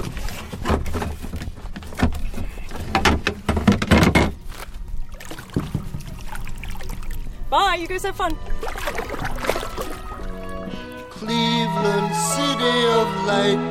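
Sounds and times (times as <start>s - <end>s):
irregular bumps and thuds: 0.0s - 4.7s, 5.4s - 6.3s
kayak paddle splashes: 0.0s - 11.2s
kayak scraping and knocking as it slides into the water: 0.0s - 11.2s
gentle water trickling: 4.4s - 11.1s
speech: 7.5s - 9.1s, 11.2s - 13.6s.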